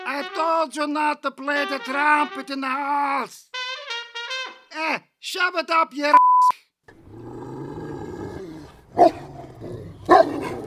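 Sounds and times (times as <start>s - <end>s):
speech: 0.1s - 3.6s, 4.8s - 6.2s, 9.0s - 9.2s
dog barking: 9.0s - 9.3s, 10.0s - 10.6s.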